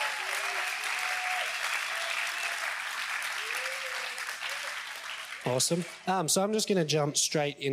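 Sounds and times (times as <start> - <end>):
faint cheers or voices: 0.0 - 4.9
crowd applause for youth leaders: 0.0 - 6.3
speech: 5.4 - 7.7.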